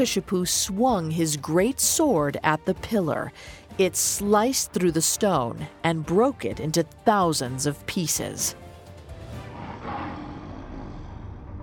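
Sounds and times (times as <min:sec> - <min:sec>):
speech: 0:00.0 - 0:08.6
deep rumbling lion roar: 0:09.1 - 0:11.6.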